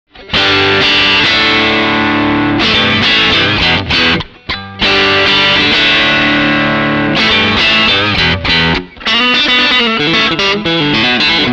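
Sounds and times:
electric guitar through Tech 21 SansAmp English Muffy Drive pedal: 0:00.2 - 0:11.5.

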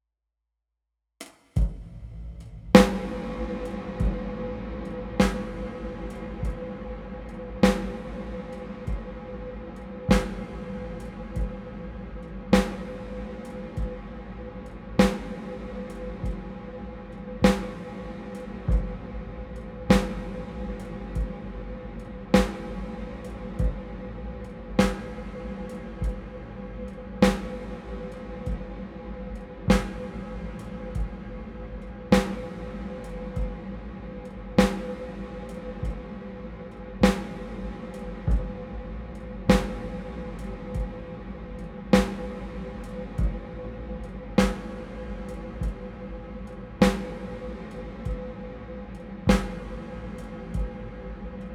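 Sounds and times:
VST synthesized drums: 0:01.6 - 0:11.8, 0:12.5 - 0:16.6, 0:17.4 - 0:21.5, 0:22.2 - 0:24.0, 0:27.2 - 0:28.8, 0:29.4 - 0:33.6, 0:34.6 - 0:36.2, 0:37.0 - 0:46.0, 0:46.8 - 0:48.4, 0:49.0 - 0:50.9.

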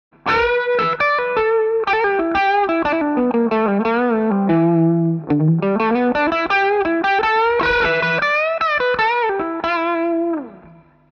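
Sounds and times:
distorted crunch electric guitar solo through a cardioid microphone: 0:00.2 - 0:11.0.

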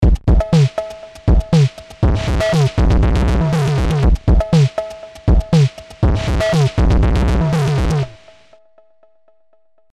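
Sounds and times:
CMI V beats: 0:00.0 - 0:08.3
filtered MS 20 gabber sequence: 0:01.4 - 0:08.3.

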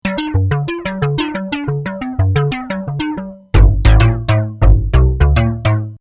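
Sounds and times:
cross-modulated synth tone: 0:00.0 - 0:05.9.

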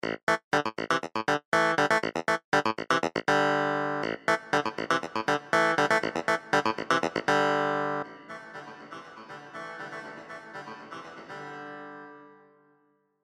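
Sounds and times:
clavinet with chamber reverb: 0:00.0 - 0:08.1.

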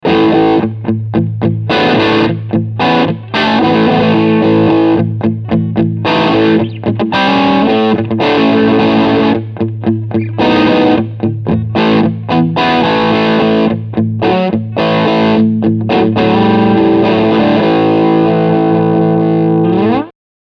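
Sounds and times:
guitar through tube squasher at medium gain: 0:00.0 - 0:20.2.

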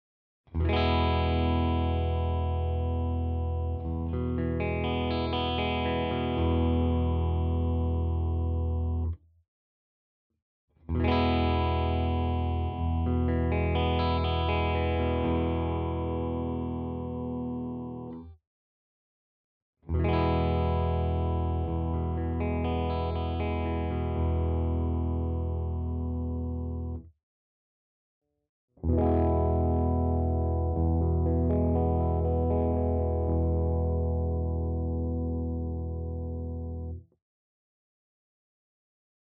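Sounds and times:
clean guitar tone: 0:00.6 - 0:09.1, 0:11.0 - 0:18.2, 0:19.9 - 0:27.0, 0:28.8 - 0:37.0.

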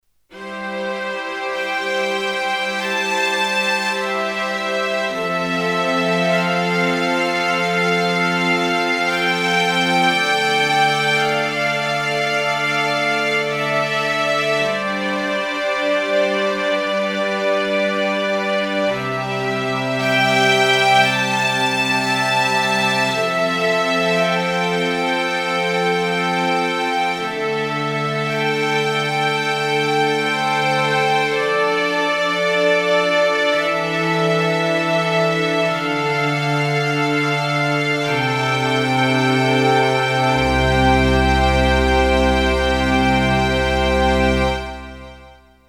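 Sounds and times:
Roland FP 60X Chamber Strings: 0:00.3 - 0:45.3.

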